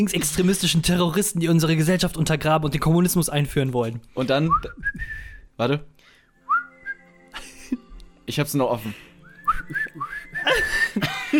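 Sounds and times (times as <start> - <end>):
speech: 0.0 - 5.9, 8.3 - 11.3
person whistling a short melody: 4.4 - 5.5, 6.4 - 7.3, 9.1 - 11.0.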